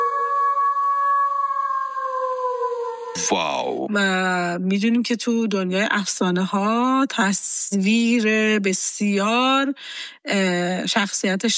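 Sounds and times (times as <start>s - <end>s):
wolf howling: 0.0s - 3.4s
speech: 3.2s - 11.5s.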